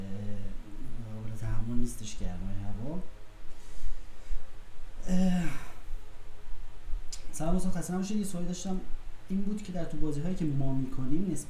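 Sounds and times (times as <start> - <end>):
electric fan humming with soft airy hiss: 0.0 - 11.4
speech: 1.7 - 3.2, 7.4 - 11.4
brief breathy sigh: 5.0 - 6.0.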